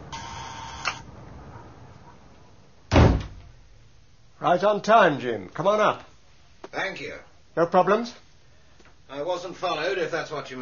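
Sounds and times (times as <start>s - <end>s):
short electric buzz with a click: 0.1s - 1.0s
door clunk as it is pushed open: 2.9s - 3.5s
speech: 4.4s - 6.1s, 6.7s - 8.2s, 9.1s - 10.6s.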